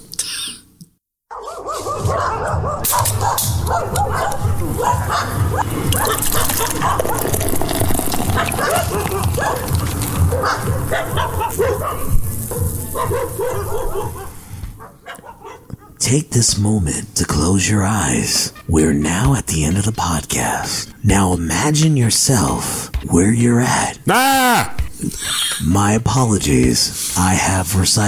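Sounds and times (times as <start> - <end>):
crowd of dogs barking: 1.3 - 7.5, 8.2 - 16.0
speech: 10.4 - 14.2, 16.1 - 28.0.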